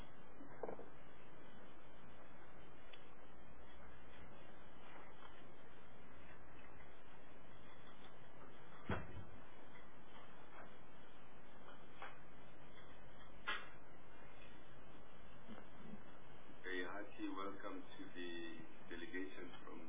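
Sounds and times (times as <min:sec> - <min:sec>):
faint shuffling: 0:00.0 - 0:19.8
steady room hum: 0:00.0 - 0:19.8
door shutting with a dull thud: 0:08.8 - 0:09.3.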